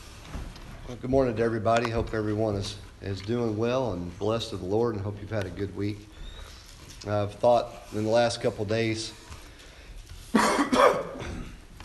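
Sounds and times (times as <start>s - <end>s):
speech: 0.9s - 6.2s, 7.0s - 9.2s
person with a strained voice coughing: 10.3s - 11.6s
person with a strained voice clearing throat: 10.3s - 11.7s.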